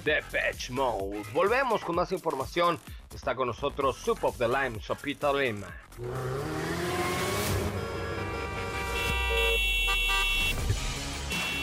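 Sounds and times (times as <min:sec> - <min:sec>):
speech: 0:00.0 - 0:06.7
car horns honking: 0:07.7 - 0:11.6.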